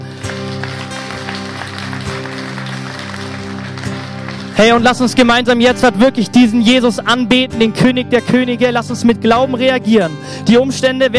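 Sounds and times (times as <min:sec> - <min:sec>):
audience applauding for Jesus: 0:00.0 - 0:05.3
speech: 0:04.6 - 0:11.1.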